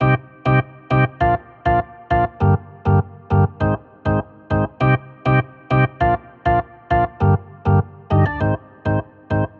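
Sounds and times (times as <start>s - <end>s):
organ playing bouncy pop chords in C minor: 0.0s - 9.5s.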